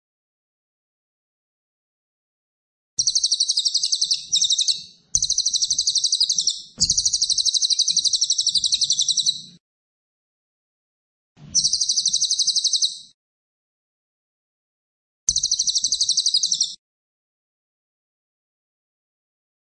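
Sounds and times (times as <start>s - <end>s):
cililin singing dense high-pitched rattling trills: 3.0s - 9.5s, 11.6s - 13.1s, 15.3s - 16.8s.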